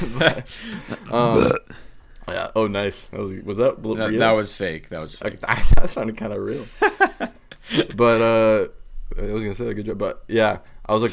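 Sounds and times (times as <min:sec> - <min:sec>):
laughter: 0:00.0 - 0:01.1, 0:06.6 - 0:08.2
speech: 0:00.0 - 0:11.1
short throaty vocal sounds: 0:00.8 - 0:02.6
loud guttural burp into a microphone: 0:01.1 - 0:02.6.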